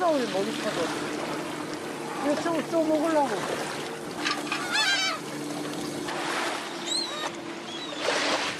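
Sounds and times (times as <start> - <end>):
steady engine hum: 0.0 - 8.5
speech: 0.1 - 1.3, 2.2 - 3.8
seagulls squawking as they gather: 4.3 - 5.5, 6.6 - 8.2.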